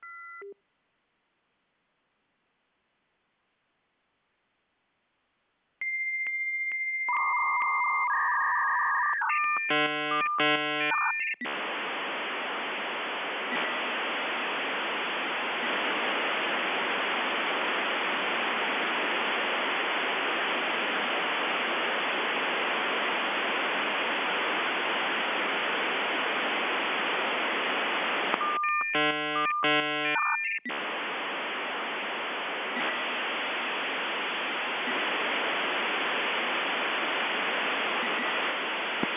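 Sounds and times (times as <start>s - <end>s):
modem signal at 33600 baud: 5.8s - 39.1s.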